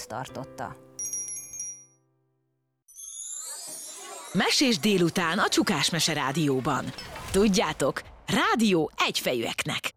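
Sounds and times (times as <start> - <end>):
speech: 0.0 - 0.9, 4.3 - 9.9
bright shimmering jingling: 1.0 - 2.1, 2.9 - 4.8
small bell ringing: 1.0 - 2.1.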